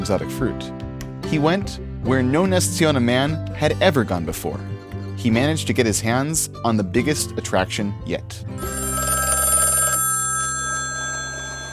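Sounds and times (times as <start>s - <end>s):
speech: 0.0s - 8.9s
old black telephone bell ringing: 8.6s - 11.7s.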